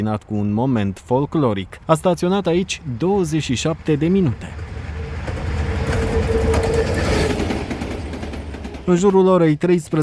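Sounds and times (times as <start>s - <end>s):
speech: 0.0s - 4.8s, 8.9s - 10.0s
passenger train wheels rumbling arriving at a border customs station in Romania: 1.9s - 10.0s
passenger train wheels squealing: 3.4s - 8.9s.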